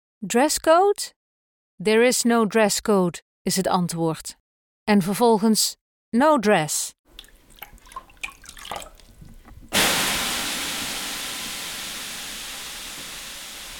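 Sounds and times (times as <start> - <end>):
speech: 0.2 - 1.2, 1.8 - 7.0
water dripping and splashing in a sauna in Sweden: 7.1 - 13.7
steam hissing in a sauna in Sweden: 9.7 - 13.7.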